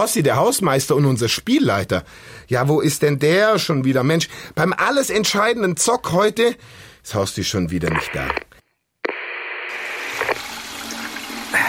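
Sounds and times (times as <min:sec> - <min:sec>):
speech: 0:00.0 - 0:08.5
toilet flush running continuously: 0:10.1 - 0:11.6.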